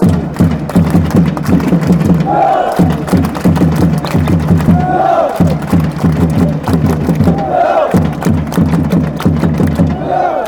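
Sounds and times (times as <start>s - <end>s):
drums: 0.0s - 10.4s
people chanting: 2.2s - 3.4s, 4.5s - 8.3s, 9.8s - 10.4s.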